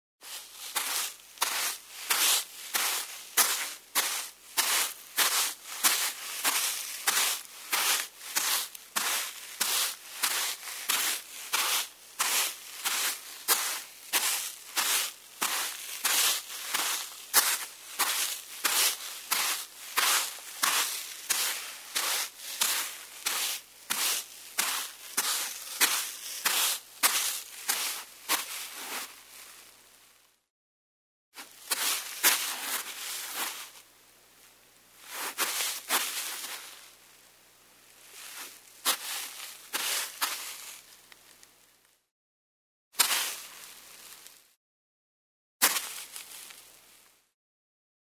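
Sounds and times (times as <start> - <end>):
footsteps on sand: 0.2 - 29.2, 31.4 - 33.8, 35.1 - 36.8, 38.2 - 40.8, 43.0 - 44.2, 45.6 - 46.6.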